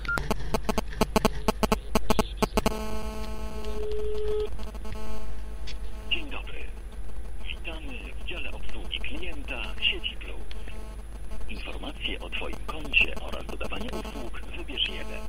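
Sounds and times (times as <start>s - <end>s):
rapid rhythmic electronic buzzing pulses from mobile phone interference: 0.0s - 15.2s
voice: 6.1s - 6.8s, 7.4s - 10.8s, 11.5s - 15.2s.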